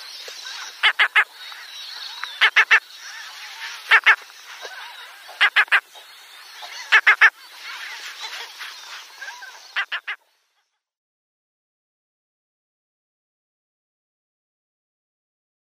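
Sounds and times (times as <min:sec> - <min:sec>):
other birds chattering: 0:00.0 - 0:10.4
Mediterranean gull giving short nasal calls: 0:00.8 - 0:01.3, 0:02.4 - 0:02.8, 0:03.9 - 0:05.8, 0:06.7 - 0:07.3.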